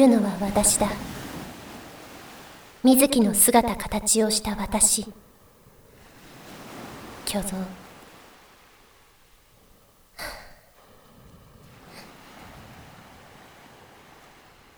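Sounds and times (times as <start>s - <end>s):
speech: 0.0s - 1.2s, 2.8s - 5.3s, 7.3s - 7.8s
ocean surf rolling in: 0.0s - 5.0s, 5.6s - 14.7s
wind: 0.0s - 14.7s.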